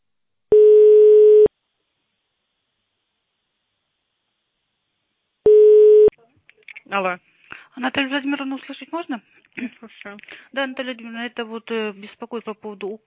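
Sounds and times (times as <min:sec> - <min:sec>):
telephone ringback tone on a call to a tax inspectorate office: 0:00.5 - 0:01.5, 0:05.5 - 0:06.1
speech: 0:06.9 - 0:13.0.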